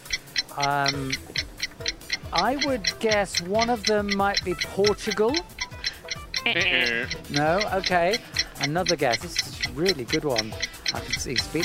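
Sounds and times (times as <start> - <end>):
quiz countdown clock ticking: 0.0 - 11.6
speech: 0.6 - 5.5, 6.4 - 11.6
short voiced tone or murmur: 6.5 - 7.1.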